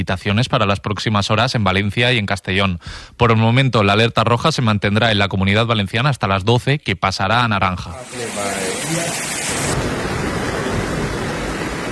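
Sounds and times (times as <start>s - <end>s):
speech: 0.0s - 9.9s
floodwater rushing through Tortosa and Santa Bárbara in Tarragona during heavy rain: 7.9s - 11.9s.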